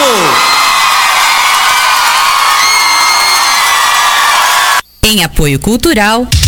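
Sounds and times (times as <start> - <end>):
large crowd applauding and cheering: 0.0 - 4.8
whoops and shouts: 0.0 - 4.8
speech: 5.0 - 6.4.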